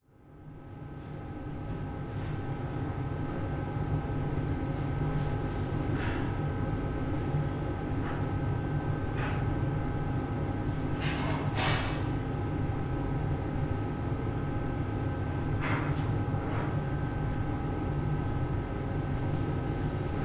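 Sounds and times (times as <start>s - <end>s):
restaurant kitchen lunch working ambience: 0.1s - 20.2s.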